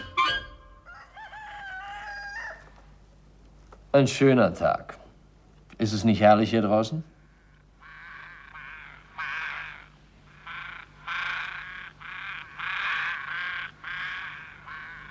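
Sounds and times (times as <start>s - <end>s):
ravens cawing outdoors: 0.8s - 3.0s, 7.1s - 15.1s
speech: 3.9s - 5.0s, 5.8s - 7.1s.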